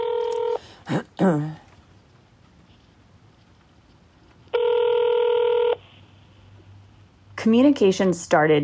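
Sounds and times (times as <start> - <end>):
telephone line ringing with a steady electronic tone: 0.0 - 0.6, 4.5 - 5.8
speech: 0.9 - 1.6, 7.4 - 8.6.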